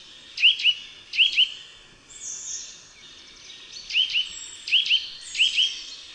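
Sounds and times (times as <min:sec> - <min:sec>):
Eurasian nuthatch giving doubled rising whistled calls: 0:00.4 - 0:01.6, 0:03.8 - 0:06.0.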